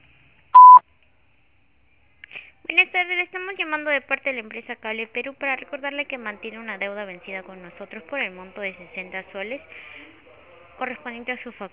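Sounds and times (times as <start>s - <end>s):
voicemail beep tone before recording a message: 0.6s - 0.8s
speech: 2.9s - 10.1s, 10.8s - 11.7s.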